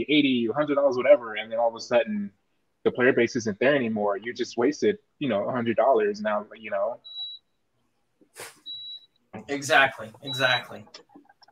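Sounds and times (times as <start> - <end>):
speech: 0.0 - 7.2, 8.4 - 8.6, 9.4 - 11.1
air fryer beeping in kitchen: 8.7 - 11.0.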